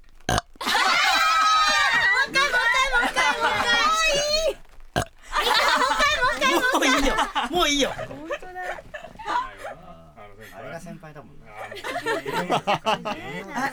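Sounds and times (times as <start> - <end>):
person burping on demand: 0.3 - 0.6, 5.0 - 5.2
laughter: 0.6 - 4.6, 5.3 - 10.6, 11.5 - 13.7
excited voices: 0.6 - 13.7
speech: 7.6 - 8.2, 11.1 - 13.7.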